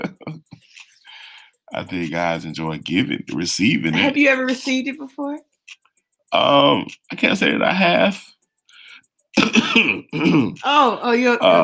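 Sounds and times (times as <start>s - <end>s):
speech: 1.7s - 5.5s, 6.3s - 8.4s, 9.4s - 11.6s
person coughing and clearing their throat: 9.4s - 10.6s.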